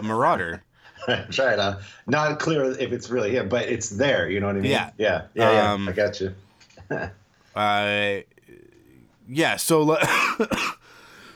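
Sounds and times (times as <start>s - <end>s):
speech: 0.0s - 8.6s, 9.3s - 10.8s
person clearing their throat: 10.0s - 10.8s
person coughing roughly: 10.0s - 10.9s.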